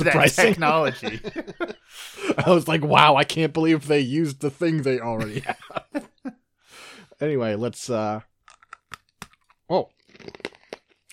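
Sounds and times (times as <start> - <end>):
laughter: 0.0 - 3.1, 5.1 - 6.4
speech: 0.0 - 6.1, 7.2 - 8.3, 9.7 - 10.4
crunchy tropical punch flavored snack being chewed: 8.4 - 11.1.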